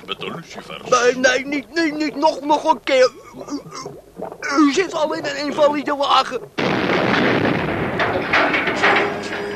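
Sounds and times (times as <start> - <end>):
speech: 0.2 - 6.6
barrage of heavy explosions: 6.6 - 9.0
continuous roar: 6.6 - 9.5.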